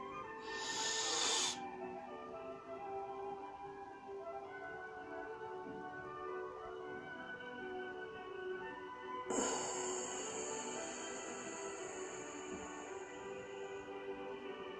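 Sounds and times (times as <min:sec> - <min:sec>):
faint steady tonal background: 0:00.0 - 0:14.7
deep breath: 0:00.3 - 0:01.6, 0:09.3 - 0:14.7.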